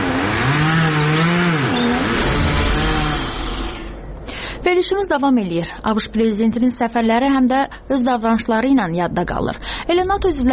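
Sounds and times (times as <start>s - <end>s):
chainsaw cutting trees in a forest: 0.0s - 4.0s
speech: 4.8s - 10.5s.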